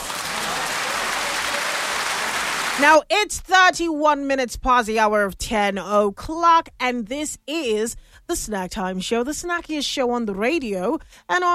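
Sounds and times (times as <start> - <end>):
round of applause from a crowd: 0.0 - 2.8
speech: 2.8 - 11.5.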